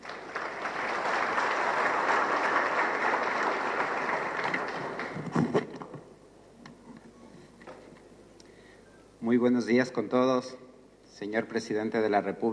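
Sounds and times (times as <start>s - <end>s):
audience applause: 0.0s - 5.5s
speech: 9.4s - 12.5s.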